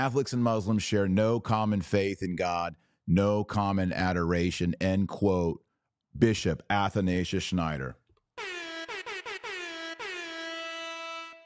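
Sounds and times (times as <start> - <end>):
speech: 0.0 - 8.5
loud blaring air horn sound effect blasts: 8.4 - 11.4.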